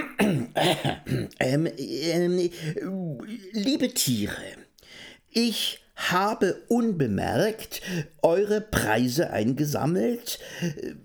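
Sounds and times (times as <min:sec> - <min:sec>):
person theatrically clearing throat: 0:00.0 - 0:01.7
speech: 0:00.6 - 0:04.6, 0:05.3 - 0:11.0.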